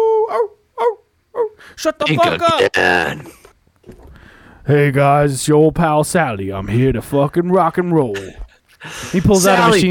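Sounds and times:
wolf yelping: 0:00.1 - 0:01.6
speech: 0:01.8 - 0:03.4, 0:04.7 - 0:09.8.

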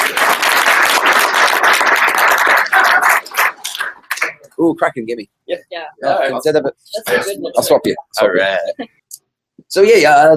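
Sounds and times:
room full of people applauding: 0:00.0 - 0:04.4
speech: 0:04.6 - 0:09.0, 0:09.7 - 0:10.3.

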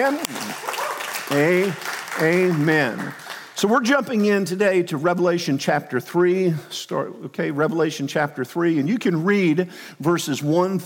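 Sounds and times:
speech: 0:00.0 - 0:00.7, 0:01.3 - 0:10.8
church audience clapping: 0:00.0 - 0:04.6.

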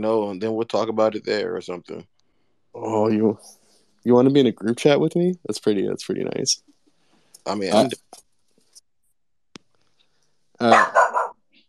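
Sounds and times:
speech: 0:00.0 - 0:02.1, 0:02.8 - 0:06.7, 0:07.4 - 0:08.2, 0:10.6 - 0:11.0
dog barking: 0:10.6 - 0:11.4.

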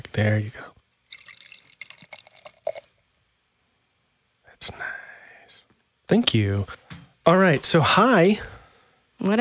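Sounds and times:
speech: 0:00.2 - 0:00.8, 0:06.1 - 0:08.5, 0:09.2 - 0:09.3
beer fizzing: 0:01.0 - 0:03.0
unfiltered West Coast style beer pouring into a glass: 0:01.0 - 0:03.0.

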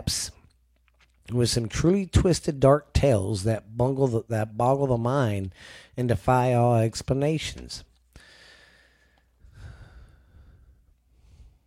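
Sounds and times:
speech: 0:00.1 - 0:00.4, 0:01.3 - 0:07.9
heavy breathing: 0:05.5 - 0:06.0, 0:08.1 - 0:11.6.

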